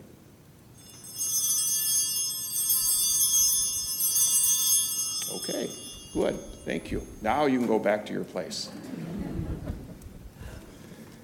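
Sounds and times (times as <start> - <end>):
altar bells jingling: 0.8 - 7.6
speech: 5.4 - 9.2.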